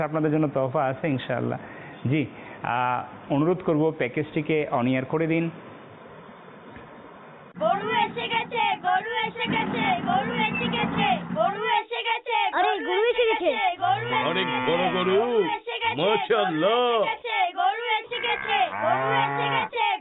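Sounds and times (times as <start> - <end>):
speech: 0.0 - 5.7, 9.4 - 17.6
excited people talking and shouting: 7.6 - 20.0
cow chasing a man mooing loudly: 13.8 - 15.3, 18.2 - 19.7.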